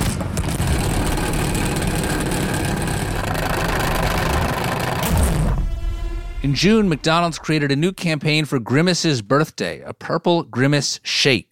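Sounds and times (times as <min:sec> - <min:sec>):
salad spinner being spun: 0:00.5 - 0:05.4
speech: 0:06.4 - 0:11.5.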